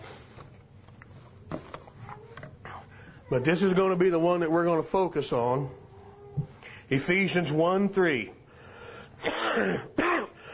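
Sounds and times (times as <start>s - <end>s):
speech: 3.3s - 5.8s, 6.9s - 8.4s, 9.2s - 9.9s
hoarse coughs: 9.2s - 10.4s.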